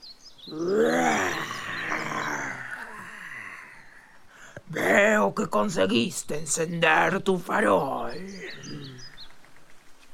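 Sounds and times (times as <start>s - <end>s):
speech: 0.5s - 0.8s, 5.3s - 9.0s
bear growling grumpily: 0.5s - 5.0s, 8.2s - 9.2s.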